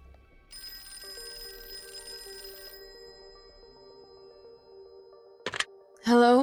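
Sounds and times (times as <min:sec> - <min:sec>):
telephone bell ringing: 0:00.5 - 0:05.5.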